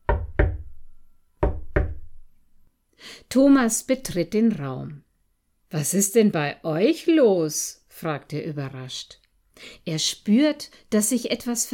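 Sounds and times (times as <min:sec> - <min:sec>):
knocking on a wooden door: 0:00.0 - 0:00.8, 0:01.4 - 0:02.2
speech: 0:03.2 - 0:05.0, 0:05.7 - 0:11.7.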